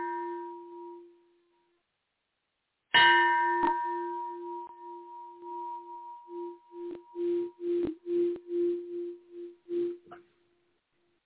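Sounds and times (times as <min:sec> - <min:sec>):
bell rung to clear energy: 0:03.0 - 0:10.0.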